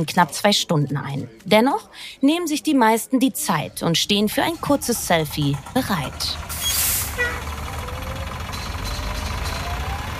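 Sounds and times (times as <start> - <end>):
speech: 0.0 - 6.8
heavy 480-horsepower team bus engine rumbling: 3.4 - 10.1
bus air brakes releasing with a hiss: 6.5 - 7.5.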